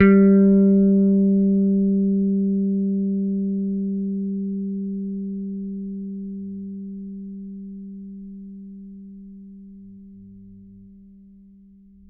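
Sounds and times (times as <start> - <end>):
Thunderbird bass guitar note played with a pick: 0.0 - 7.6.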